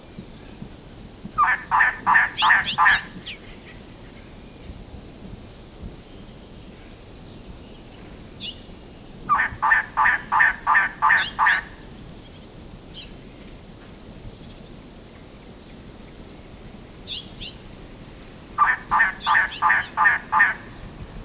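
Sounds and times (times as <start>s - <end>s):
Elegant Trogon Trogon elegans calling: 1.4s - 3.4s, 9.3s - 11.8s, 18.6s - 20.8s.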